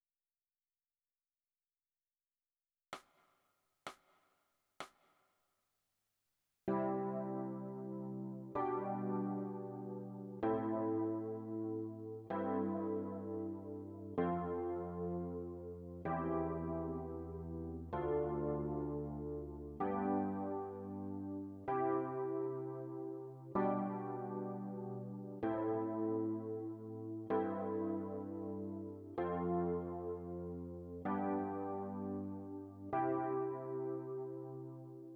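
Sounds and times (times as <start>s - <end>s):
electric piano: 6.7s - 35.1s.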